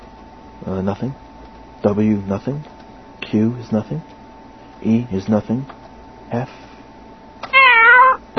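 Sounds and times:
speech: 0.8s - 1.3s, 1.8s - 2.7s, 3.3s - 4.2s, 4.8s - 5.8s, 6.3s - 6.7s
cat meowing: 7.5s - 8.2s.

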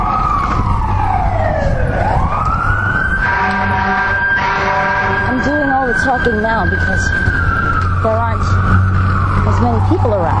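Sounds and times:
steady street traffic noise: 0.0s - 10.3s
wailing siren of passing emergency vehicles: 0.0s - 10.3s
speech: 6.1s - 7.4s, 8.0s - 8.8s, 9.5s - 10.3s.

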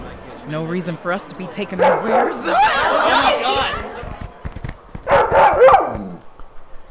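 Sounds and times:
speech: 0.5s - 4.0s
laughter: 1.7s - 4.3s
wolf barking: 1.8s - 2.5s, 5.1s - 6.2s.

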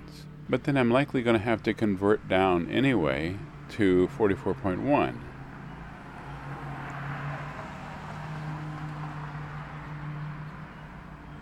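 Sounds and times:
speech: 0.5s - 5.3s
car passing by with road noise and low engine hum: 3.6s - 11.4s.

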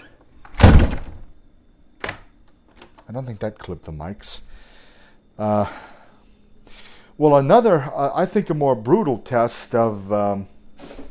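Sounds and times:
apartment door slamming shut: 0.5s - 1.3s
speech: 3.1s - 4.7s, 5.4s - 5.9s, 7.2s - 10.5s.

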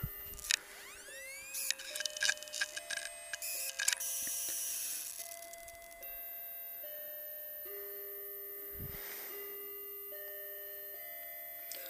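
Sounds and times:
electronic bathroom clock chime melody: 0.0s - 11.8s
clicks: 1.4s - 4.6s.

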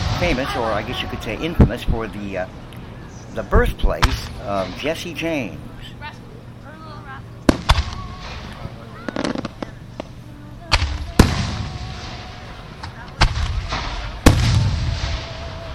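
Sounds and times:
fireworks exploding overhead: 0.0s - 2.2s, 7.4s - 15.7s
steady murmur: 0.0s - 15.7s
speech: 0.2s - 2.7s, 3.4s - 5.7s.

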